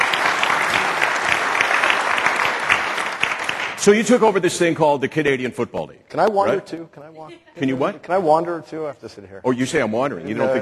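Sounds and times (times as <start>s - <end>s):
room full of people clapping: 0.0s - 4.0s
speech: 3.8s - 10.6s.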